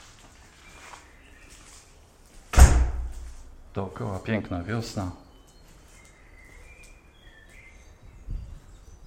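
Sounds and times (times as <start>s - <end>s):
birds singing outdoors in spring: 0.3s - 2.1s, 3.7s - 9.0s
speech: 3.7s - 5.2s.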